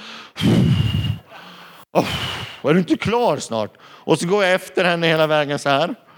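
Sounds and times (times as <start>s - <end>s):
man exhaling heavily and impatiently: 0.0s - 2.6s
speech: 2.0s - 6.0s.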